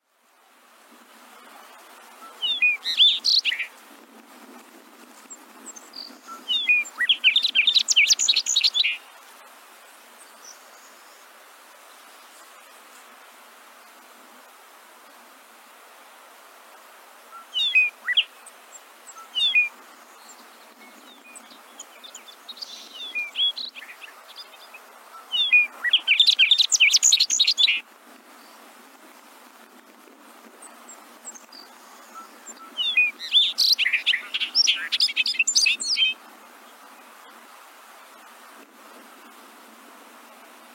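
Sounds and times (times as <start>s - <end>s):
singing: 2.2s - 3.7s, 5.8s - 9.0s, 17.3s - 18.4s, 19.1s - 27.8s, 31.3s - 36.2s.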